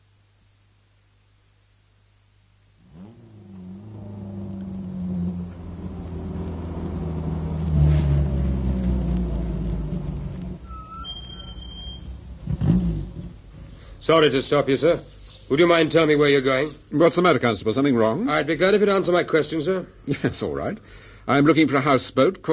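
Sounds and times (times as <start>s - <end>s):
car engine starting up and accelerating: 2.8s - 13.6s
sharp high tones: 10.6s - 12.2s
speech: 14.1s - 22.5s.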